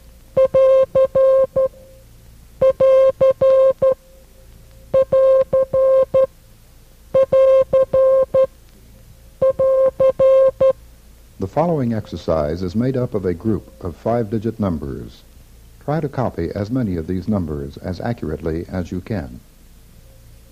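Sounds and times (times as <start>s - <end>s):
Morse code end-of-transmission sign beeped as a mid-pitched tone: 0.4s - 1.8s, 2.6s - 4.0s, 4.9s - 6.3s, 7.2s - 8.5s, 9.4s - 10.8s
speech: 11.6s - 15.3s, 15.9s - 19.5s.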